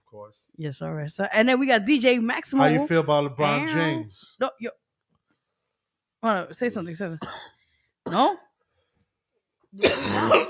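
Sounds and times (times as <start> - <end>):
speech: 0.1 - 4.8, 6.2 - 8.4, 9.7 - 10.4
harsh raspy cough: 7.2 - 8.3, 9.8 - 10.4.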